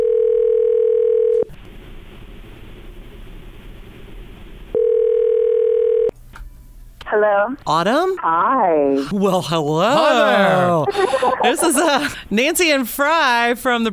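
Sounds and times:
outgoing phone call ringing tone: 0:00.0 - 0:01.5, 0:04.7 - 0:06.1
speech: 0:07.2 - 0:13.9
laughter: 0:09.8 - 0:12.2.

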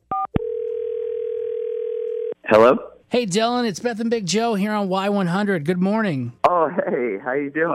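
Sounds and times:
steady continuous telephone line tone: 0:00.1 - 0:02.4
speech: 0:02.5 - 0:07.7.

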